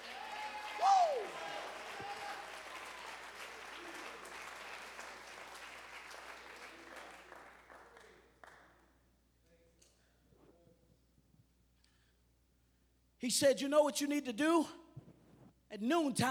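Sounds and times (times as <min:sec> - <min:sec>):
brief whoop or cheer: 0:00.0 - 0:03.0
audience clapping hands in sustained applause: 0:00.0 - 0:08.7
speech: 0:13.2 - 0:14.8, 0:15.8 - 0:16.2.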